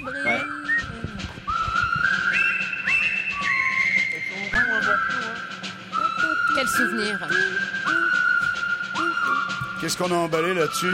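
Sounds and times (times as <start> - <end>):
person whistling a cheerful tune: 0.0 - 10.9
speech: 9.9 - 10.9.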